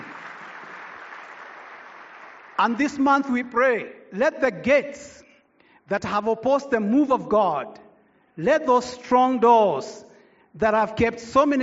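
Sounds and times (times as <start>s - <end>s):
congregation clapping hands during a church service: 0.0s - 3.8s
speech: 2.6s - 5.2s, 5.9s - 7.8s, 8.4s - 11.6s.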